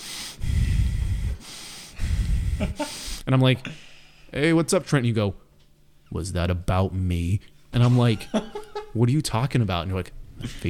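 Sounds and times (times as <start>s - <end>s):
voice mimicking heavy angry breathing: 0.0s - 3.3s
speech: 2.6s - 5.4s, 6.1s - 10.6s.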